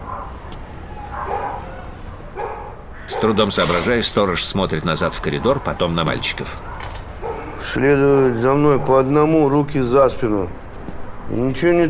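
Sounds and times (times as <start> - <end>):
dog barking: 0.0 - 3.4, 6.6 - 7.6
speech: 3.1 - 6.7, 7.6 - 10.6, 11.3 - 11.8.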